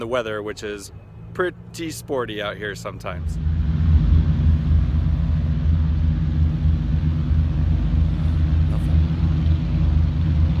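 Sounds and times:
speech: 0:00.0 - 0:03.5
racing aircraft flying past with deep engine rumble: 0:02.7 - 0:10.5.

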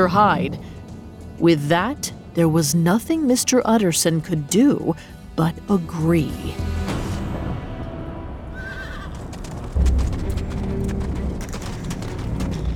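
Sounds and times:
speech: 0:00.0 - 0:00.8, 0:01.4 - 0:06.8
horse giving a short high whinny: 0:08.5 - 0:09.6
horse hooves clip-clopping: 0:08.6 - 0:12.7
horse-drawn coach rumbling: 0:08.8 - 0:12.7.

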